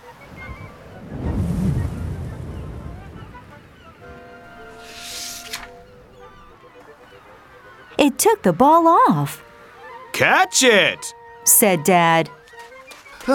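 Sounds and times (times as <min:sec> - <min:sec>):
strong gust of wind with a low blustery roar: 0:01.0 - 0:03.2
speech: 0:08.0 - 0:09.4, 0:10.2 - 0:12.4.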